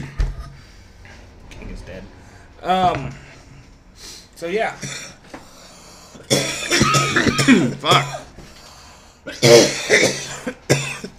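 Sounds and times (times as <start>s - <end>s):
speech: 1.9s - 3.2s, 4.4s - 5.0s, 7.1s - 8.2s, 9.4s - 10.2s
man coughing fit while drinking coffee: 4.8s - 5.2s, 6.2s - 8.3s, 9.3s - 11.1s.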